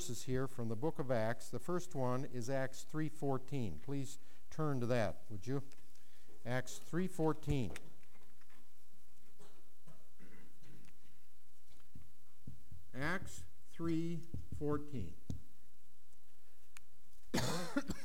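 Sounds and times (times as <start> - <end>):
speech: 0.0 - 5.8, 6.4 - 7.9, 13.0 - 15.3, 17.3 - 18.0
person coughing harshly: 9.4 - 10.8, 17.3 - 18.0
throat clearing: 9.4 - 10.8.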